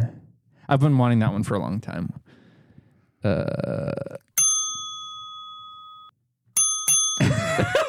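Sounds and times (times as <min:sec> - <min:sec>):
speech: 0:00.7 - 0:02.4, 0:03.2 - 0:04.2
airline seatbelt sign chime: 0:04.4 - 0:07.4.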